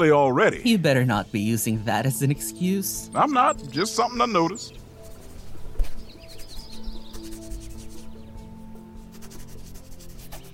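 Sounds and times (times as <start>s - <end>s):
speech: 0.0s - 4.8s
bird chirps: 2.3s - 8.5s
pen or pencil scratching on paper while writing a poem: 5.0s - 5.5s, 6.2s - 8.2s, 9.1s - 10.5s.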